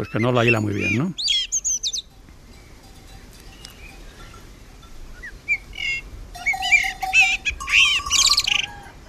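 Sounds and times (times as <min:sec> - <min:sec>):
speech: 0:00.0 - 0:01.3
young blackbird singing on a farm: 0:00.0 - 0:08.9.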